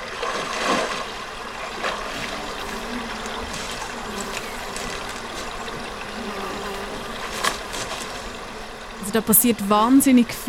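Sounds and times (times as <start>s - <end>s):
insects buzzing: 0.0s - 10.4s
steady trickling water at a lake: 0.0s - 10.4s
barefoot footsteps crunching through dry grass: 2.0s - 6.2s, 7.1s - 8.4s
speech: 9.2s - 10.4s.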